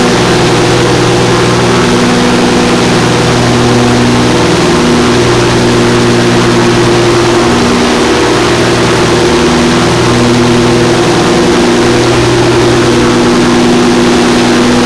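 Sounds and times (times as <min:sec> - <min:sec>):
Morava engines from the rear: 0:00.0 - 0:14.8.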